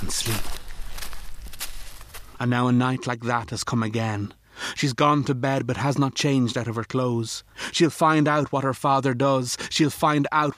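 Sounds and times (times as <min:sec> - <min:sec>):
slow footsteps crunching along the side of a house: 0:00.0 - 0:02.5
speech: 0:00.1 - 0:00.6, 0:02.4 - 0:10.5.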